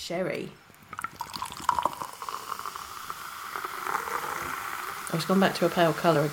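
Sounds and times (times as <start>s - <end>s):
speech: 0.0s - 0.6s, 5.1s - 6.3s
fizzy cider hissing and bubbles popping: 0.6s - 6.3s
bottle of fizzy cider being opened: 0.7s - 5.1s.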